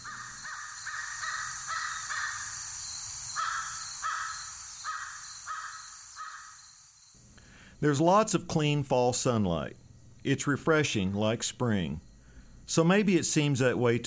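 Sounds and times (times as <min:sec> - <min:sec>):
American crows cawing: 0:00.0 - 0:02.6, 0:03.4 - 0:06.7
insects: 0:00.0 - 0:14.0
speech: 0:07.8 - 0:12.1, 0:12.7 - 0:14.0.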